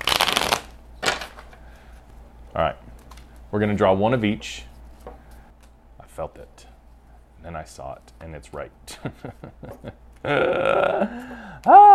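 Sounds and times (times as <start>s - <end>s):
deck of cards being shuffled: 0.0s - 1.6s
speech: 2.6s - 2.9s, 3.5s - 4.7s, 6.2s - 6.7s, 7.4s - 11.9s.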